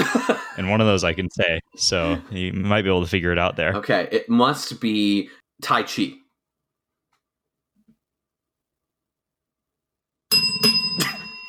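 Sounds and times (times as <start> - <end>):
speech: 0.3 - 6.2
bright bell ringing with sustained metallic ring: 10.3 - 11.4.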